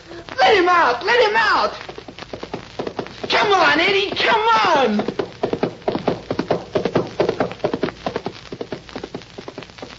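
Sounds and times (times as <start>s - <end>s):
speech: 0.7s - 1.9s, 3.3s - 5.2s
horse hooves clip-clopping: 1.8s - 9.9s.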